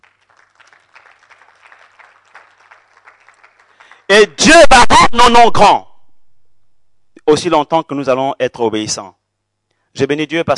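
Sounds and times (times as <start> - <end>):
church congregation applauding: 0.0 - 4.2
speech: 4.1 - 5.9, 7.3 - 9.2, 10.0 - 10.5.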